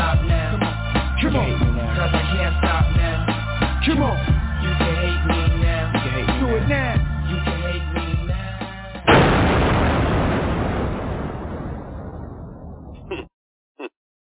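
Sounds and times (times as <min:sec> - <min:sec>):
music: 0:00.0 - 0:09.2
loud explosion sound effect: 0:09.1 - 0:13.0.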